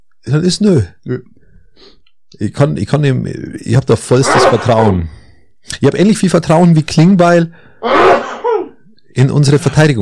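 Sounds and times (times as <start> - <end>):
speech: 0.2 - 8.0, 9.2 - 10.0
single loud sneeze: 7.9 - 8.7.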